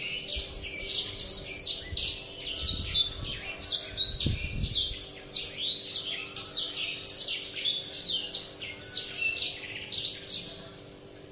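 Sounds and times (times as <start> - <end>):
Oriental magpie-robin in full song: 0.0 - 11.3.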